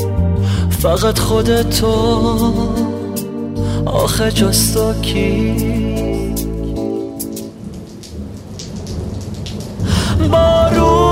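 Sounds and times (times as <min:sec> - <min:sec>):
speech: 0:00.8 - 0:02.9, 0:03.8 - 0:05.8, 0:10.2 - 0:11.0
gentle steady rain falling: 0:05.0 - 0:11.1
low rumble of thunder: 0:07.2 - 0:11.0.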